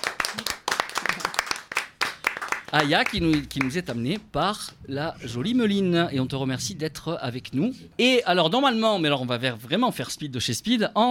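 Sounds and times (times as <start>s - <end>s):
audience applause at a live event: 0.0s - 3.7s
speech: 2.7s - 11.0s.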